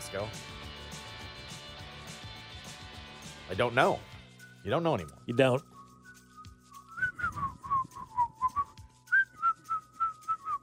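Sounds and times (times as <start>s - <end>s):
speech: 0.1s - 0.6s, 3.5s - 5.7s
person whistling a short melodic tune: 4.7s - 10.6s.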